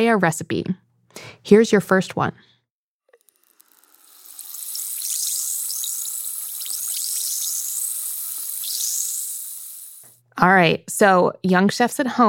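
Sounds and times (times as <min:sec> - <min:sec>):
speech: 0:00.0 - 0:02.5, 0:10.4 - 0:12.2
baking soda fizzing in a chemical reaction: 0:03.4 - 0:10.2.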